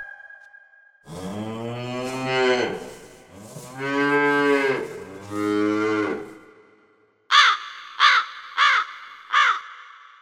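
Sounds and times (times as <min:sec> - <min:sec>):
cow mooing: 0:01.1 - 0:06.4
crow cawing: 0:07.3 - 0:10.2.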